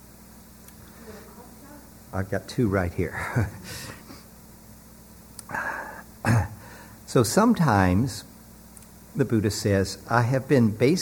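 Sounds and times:
speech: 0:02.1 - 0:04.0, 0:07.1 - 0:08.3, 0:09.2 - 0:11.0
rough coughs: 0:05.5 - 0:06.6.

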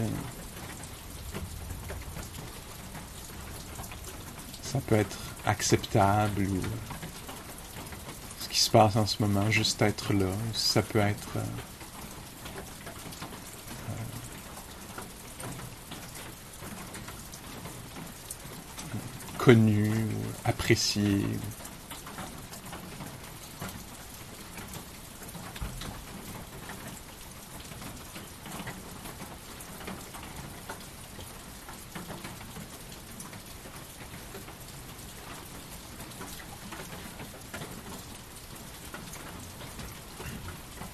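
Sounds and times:
steady rain pattering on surfaces: 0:00.0 - 0:40.9
speech: 0:04.7 - 0:07.0, 0:08.6 - 0:11.8, 0:19.5 - 0:21.7.

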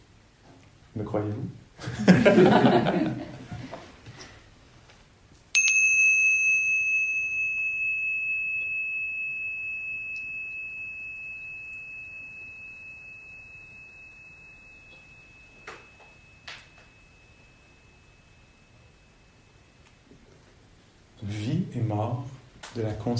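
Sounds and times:
speech: 0:01.0 - 0:03.3, 0:22.8 - 0:23.1
laughter: 0:01.8 - 0:03.7
single bell struck and ringing out: 0:05.6 - 0:20.1.

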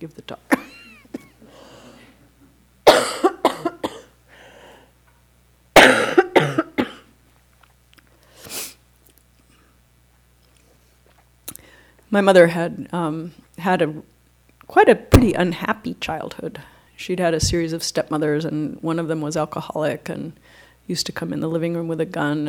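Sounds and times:
speech: 0:00.0 - 0:00.8, 0:12.1 - 0:22.4
quiet breathing: 0:01.4 - 0:02.3, 0:04.3 - 0:05.0, 0:10.6 - 0:12.1, 0:16.6 - 0:17.0, 0:20.4 - 0:20.9
person coughing in harsh fits: 0:02.9 - 0:04.2, 0:05.8 - 0:07.1.

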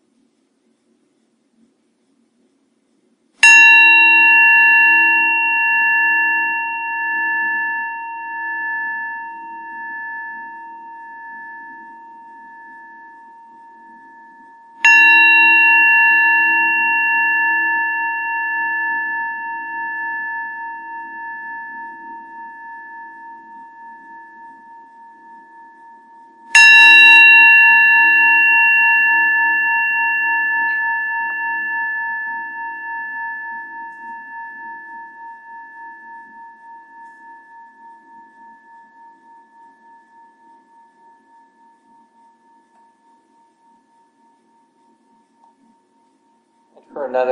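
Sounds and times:
meditation bell ringing: 0:03.4 - 0:47.2
speech: 0:47.0 - 0:47.2.

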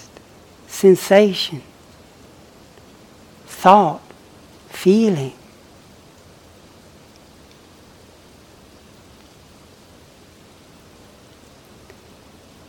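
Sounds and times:
steady rain: 0:00.0 - 0:12.6
speech: 0:00.8 - 0:01.7, 0:03.6 - 0:04.0, 0:04.8 - 0:05.4.

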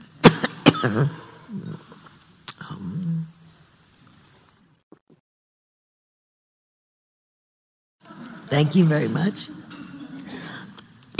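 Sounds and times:
person coughing: 0:00.2 - 0:01.4
speech: 0:00.8 - 0:02.0, 0:08.5 - 0:09.6.

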